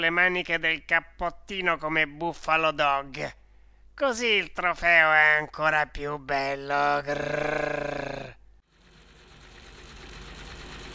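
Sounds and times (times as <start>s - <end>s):
speech: 0.0s - 3.4s, 4.0s - 8.0s
motor barge engine puttering across the lagoon: 9.0s - 10.9s.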